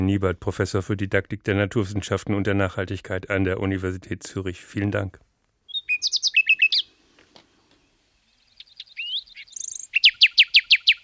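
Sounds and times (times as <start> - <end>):
speech: 0.0 - 5.3
nightingale singing: 5.7 - 7.0, 7.7 - 11.0.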